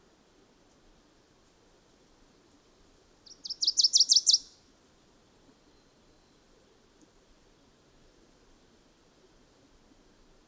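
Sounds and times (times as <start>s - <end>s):
bird chirping: 3.3s - 4.5s.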